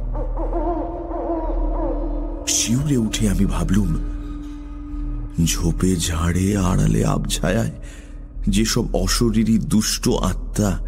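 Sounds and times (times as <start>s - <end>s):
owl calling at night: 0.0s - 3.3s
speech: 2.5s - 4.1s, 5.4s - 10.8s.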